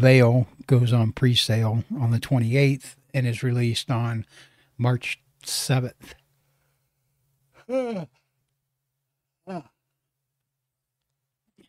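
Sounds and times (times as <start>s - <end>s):
speech: 0.0s - 6.2s, 7.7s - 8.2s, 9.5s - 9.7s
person yawning with a voiced falling groan: 7.6s - 8.2s, 9.5s - 9.8s.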